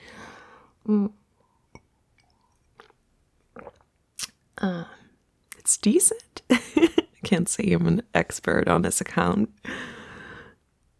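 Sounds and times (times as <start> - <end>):
speech: 0.9 - 1.2, 4.6 - 4.9, 5.8 - 6.3, 7.3 - 9.9
person sipping a drink with slurps and a swallow: 1.8 - 4.4.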